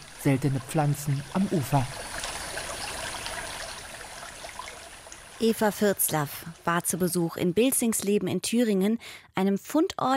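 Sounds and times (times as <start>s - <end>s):
small river babbling through meadows and forest: 0.0s - 7.3s
speech: 0.2s - 2.2s, 5.4s - 10.1s.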